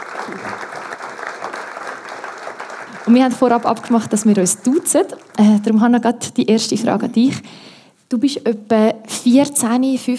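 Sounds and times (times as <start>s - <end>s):
audience applause: 0.0s - 5.7s
speech: 3.1s - 10.1s.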